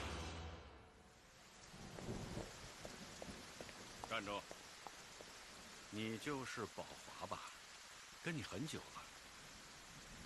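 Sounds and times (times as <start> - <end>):
steady rain falling outside a theater: 0.9 - 10.2
low rolling thunder rumble: 1.7 - 4.1
speech: 4.1 - 4.6, 5.9 - 7.5, 8.2 - 9.1.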